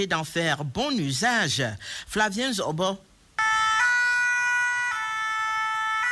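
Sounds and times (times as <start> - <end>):
speech: 0.0 - 3.1
new fire engine siren of the national fire brigade wailing in two tones: 3.4 - 6.0.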